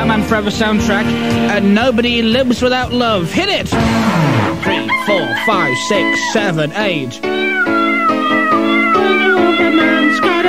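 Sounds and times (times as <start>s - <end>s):
speech: 0.0s - 7.4s
cat meowing loudly in a drawn-out yowl: 4.7s - 6.5s, 7.1s - 10.4s.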